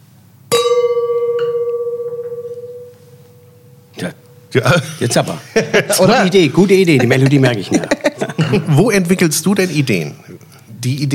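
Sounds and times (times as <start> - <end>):
wine glasses clinking together at a wine storage and tasting venue in Hamburg: 0.5 - 4.8
speech: 4.0 - 11.1
laughter: 4.7 - 9.9.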